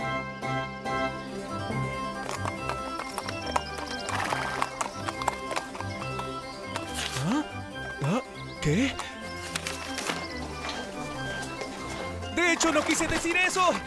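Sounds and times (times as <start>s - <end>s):
continuous musical backdrop: 0.0s - 13.8s
horse hooves clopping: 0.8s - 13.8s
horse whinnying and snorting: 3.9s - 5.2s
speech: 8.7s - 9.1s, 12.6s - 13.8s.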